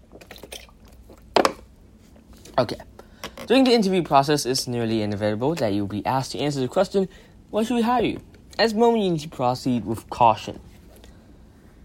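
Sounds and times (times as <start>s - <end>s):
person sipping a drink of water: 0.0s - 1.3s
gulp: 0.1s - 1.3s
speech: 2.6s - 2.9s, 3.5s - 10.7s.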